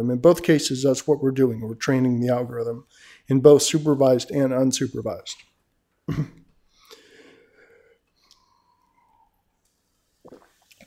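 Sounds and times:
speech: 0.0s - 5.5s, 6.1s - 6.4s
sipping water with wet mouth noises: 6.8s - 10.8s
soft swallow: 8.2s - 10.8s.

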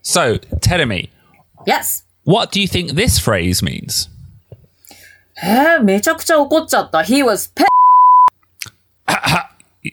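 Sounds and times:
speech: 0.0s - 4.2s, 5.4s - 7.7s
censor beep: 7.7s - 8.3s.

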